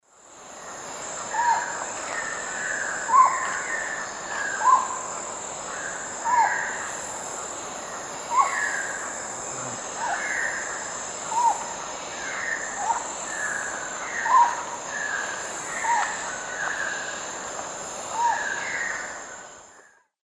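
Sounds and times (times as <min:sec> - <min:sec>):
Psarocolius yuracares calls in the Eastern Lowlands of South America: 0:01.1 - 0:06.9, 0:08.0 - 0:17.4.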